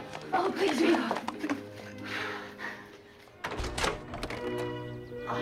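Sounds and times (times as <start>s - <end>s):
speech: 0.4s - 1.3s
rattling shuffling clatter: 3.3s - 4.9s
heavy double doors opening: 3.3s - 5.2s.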